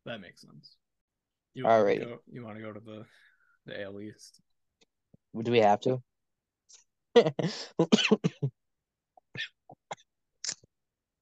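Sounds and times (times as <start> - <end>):
speech: 0.1 - 0.8, 1.5 - 4.5, 5.3 - 6.1, 6.7 - 8.6
person coughing after swallowing drink down wrong pipe: 7.8 - 8.5.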